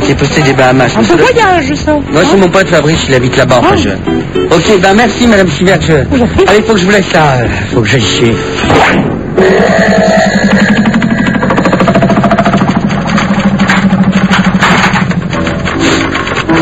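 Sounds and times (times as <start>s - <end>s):
speech: 0.1s - 10.7s
small scooter engine idling: 10.4s - 15.7s.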